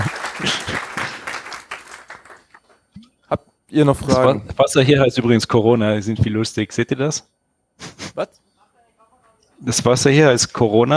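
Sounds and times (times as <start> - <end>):
audience applause for a speaker at the close of a talk: 0.0 - 2.7
speech: 3.7 - 7.3, 8.2 - 8.4, 9.6 - 10.9.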